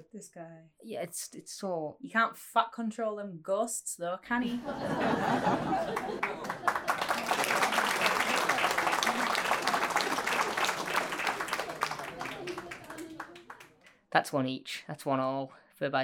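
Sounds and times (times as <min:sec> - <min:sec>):
speech: 0:00.1 - 0:06.8, 0:14.1 - 0:16.0
people chuckling: 0:04.4 - 0:13.6
applause from a small group: 0:05.3 - 0:14.0
murmured voices: 0:06.2 - 0:13.6.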